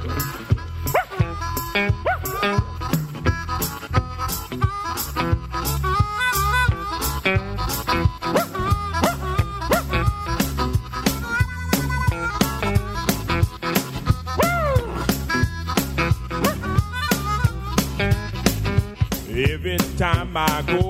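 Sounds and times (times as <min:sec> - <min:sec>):
upbeat band with a steady driving beat: 0:00.0 - 0:20.8
hound barking and whimpering in short yips: 0:00.9 - 0:02.7, 0:08.2 - 0:10.1, 0:14.4 - 0:15.0, 0:16.4 - 0:16.8
speech: 0:20.4 - 0:20.8.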